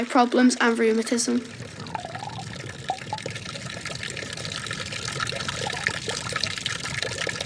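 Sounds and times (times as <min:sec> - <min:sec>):
speech: 0:00.0 - 0:01.8
water flowing from a chalybeate spring: 0:00.0 - 0:07.4.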